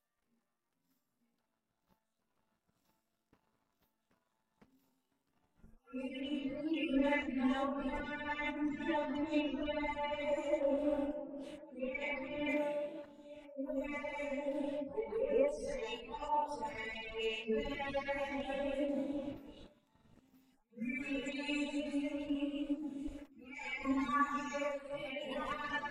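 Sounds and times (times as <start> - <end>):
noise: 0.0 - 25.8
vocals: 5.9 - 25.8.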